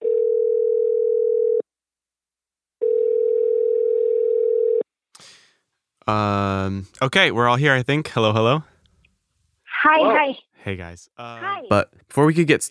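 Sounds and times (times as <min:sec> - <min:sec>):
telephone line tone of a phone call: 0:00.0 - 0:01.6, 0:02.8 - 0:04.8
speech: 0:06.1 - 0:08.7, 0:09.8 - 0:12.6.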